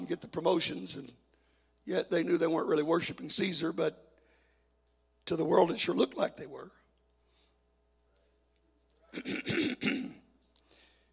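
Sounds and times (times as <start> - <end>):
speech: 0.1 - 1.2, 1.8 - 4.0, 5.3 - 6.8, 9.1 - 10.2
person clearing throat deliberately to get attention: 9.1 - 10.3.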